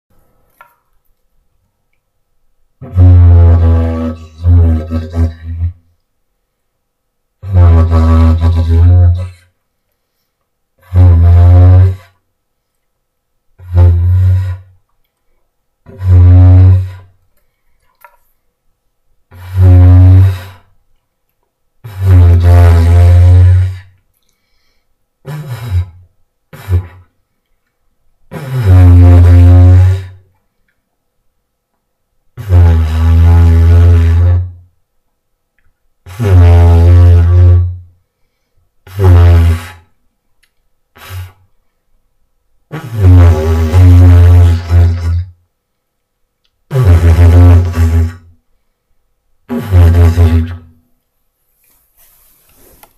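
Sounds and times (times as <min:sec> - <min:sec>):
didgeridoo: 0:02.8 - 0:05.9, 0:07.4 - 0:09.4, 0:10.8 - 0:12.2, 0:13.6 - 0:14.8, 0:15.8 - 0:17.1, 0:19.3 - 0:20.7, 0:21.8 - 0:23.9, 0:25.2 - 0:27.1, 0:28.3 - 0:30.2, 0:32.4 - 0:34.6, 0:36.1 - 0:37.8, 0:38.9 - 0:39.9, 0:42.7 - 0:45.3, 0:46.7 - 0:48.3, 0:49.5 - 0:50.7.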